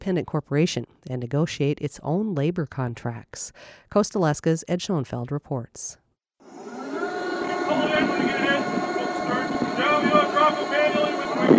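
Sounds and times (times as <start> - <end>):
speech: 0.0 - 6.0
steady gusting wind on a ferry deck: 6.7 - 11.5
low rumble of the ferry engine: 6.8 - 11.5
PA instructions booming across an open ferry deck during a safety drill: 7.5 - 11.5.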